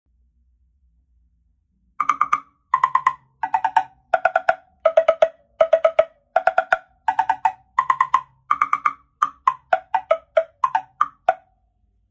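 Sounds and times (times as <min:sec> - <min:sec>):
temple blocks: 0:02.0 - 0:11.4.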